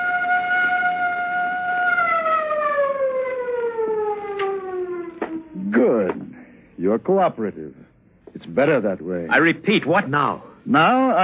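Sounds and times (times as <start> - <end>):
siren wailing: 0.0 - 6.1
speech: 6.8 - 11.2.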